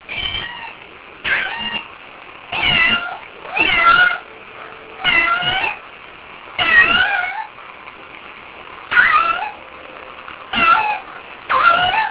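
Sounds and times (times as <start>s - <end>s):
cat meowing: 0.1s - 1.9s, 2.5s - 4.3s, 5.0s - 5.8s, 6.6s - 7.5s, 8.9s - 9.6s, 10.5s - 12.1s.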